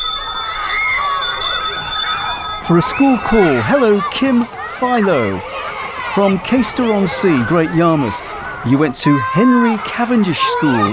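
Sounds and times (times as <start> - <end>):
bell ringing: 0.0 - 4.4
speech: 2.7 - 5.5, 6.1 - 10.9.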